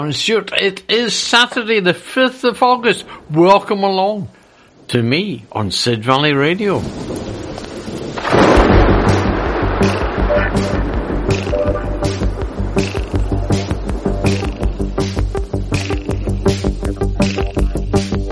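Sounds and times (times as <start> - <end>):
speech: 0.0 - 7.0
crackles: 2.9 - 18.3
thunder crack: 6.6 - 16.7
steady tonal backdrop: 9.9 - 18.3.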